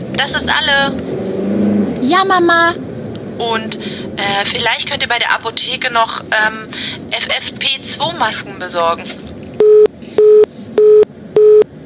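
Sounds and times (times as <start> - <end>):
speech: 0.2 - 1.2, 2.0 - 2.8, 3.4 - 9.8
telephone busy tone after a call dropped for lack of network: 9.6 - 11.6.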